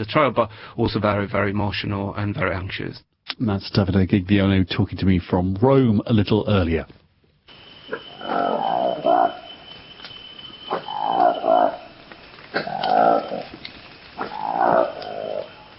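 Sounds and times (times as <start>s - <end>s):
speech: 0.0s - 7.0s
newly discovered Congolese monkey species calling: 7.8s - 15.7s.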